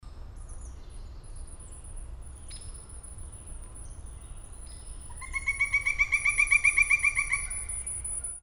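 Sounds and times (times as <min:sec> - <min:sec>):
Pileated Woodpecker: 0:05.1 - 0:08.4.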